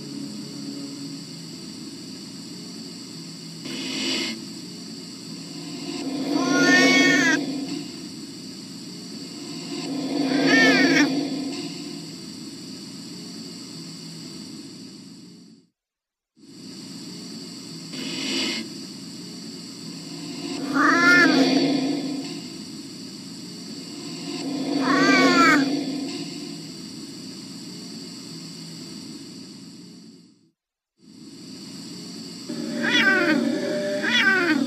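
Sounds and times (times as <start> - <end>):
steady low hum: 0.0 - 15.4, 16.8 - 30.2
high-pitched tone: 5.3 - 12.5, 19.9 - 27.2
cat meowing: 20.7 - 21.3, 32.6 - 34.6.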